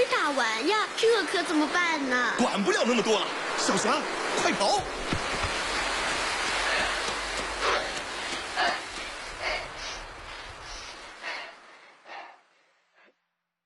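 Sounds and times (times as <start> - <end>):
heavy rain: 0.0 - 12.9
wind gusts: 0.0 - 13.1
speech: 0.3 - 5.2.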